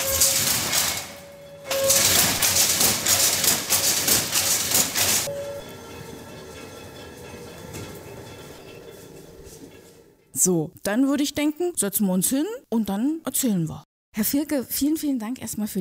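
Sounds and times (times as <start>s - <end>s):
weaving loom clattering as shafts shift and batten beats weft thread: 0.0s - 10.0s
speech: 10.4s - 15.7s.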